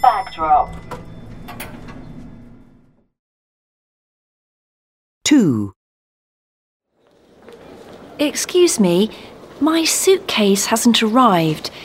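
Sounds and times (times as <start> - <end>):
airport elevator doors sliding open with mechanical rumble: 0.1 - 3.1
speech: 5.3 - 5.8, 8.2 - 11.8.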